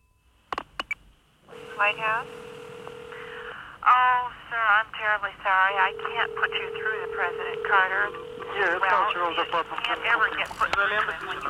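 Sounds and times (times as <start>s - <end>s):
steady humming telephone line tone: 1.5s - 3.7s, 5.7s - 10.5s
speech: 1.8s - 2.5s, 3.9s - 11.4s
telephone keypad beeps of a number being dialed: 5.8s - 9.0s.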